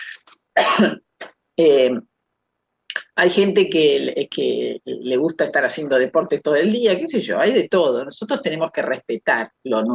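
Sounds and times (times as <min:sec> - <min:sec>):
person clearing an itchy throat: 0:00.6 - 0:01.1
speech: 0:00.8 - 0:02.1, 0:03.2 - 0:09.9.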